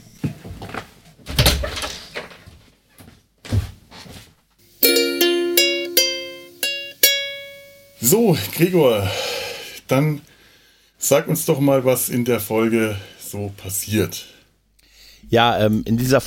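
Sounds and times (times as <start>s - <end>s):
bright doorbell chime: 4.8s - 8.0s
speech: 8.0s - 9.3s, 9.9s - 10.3s, 11.0s - 14.4s, 15.2s - 16.2s.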